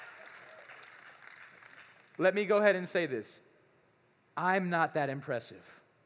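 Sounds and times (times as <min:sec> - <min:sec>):
audience clapping: 0:00.0 - 0:02.4
speech: 0:02.2 - 0:03.5, 0:04.4 - 0:05.8.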